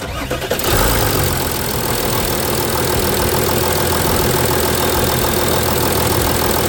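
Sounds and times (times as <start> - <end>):
engine starting and idling with a rough rhythmic clatter: 0.0 - 6.6.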